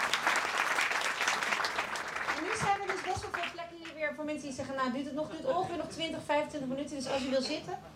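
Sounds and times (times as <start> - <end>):
audience applause at a live event: 0.0 - 3.6
speech: 3.0 - 7.9.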